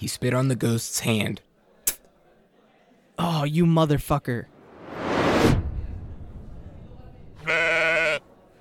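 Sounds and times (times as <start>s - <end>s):
speech: 0.0s - 1.5s, 3.2s - 4.5s
rushing whoosh: 4.5s - 7.3s
sheep bleating: 7.4s - 8.3s.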